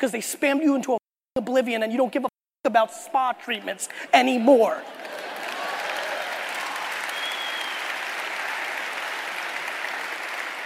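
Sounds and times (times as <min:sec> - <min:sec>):
speech: 0:00.0 - 0:05.1
sustained applause from a sizable audience: 0:04.9 - 0:10.6.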